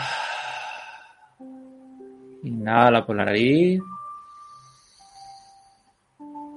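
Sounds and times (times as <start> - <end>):
person exhaling through the mouth during a breathing exercise: 0.0 - 1.3
speech: 2.4 - 4.0.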